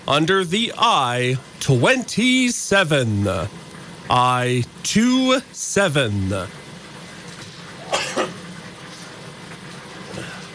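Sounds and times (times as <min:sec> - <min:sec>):
speech: 0:00.0 - 0:06.6
steady low mechanical hum: 0:00.0 - 0:10.5
person coughing: 0:07.8 - 0:08.4.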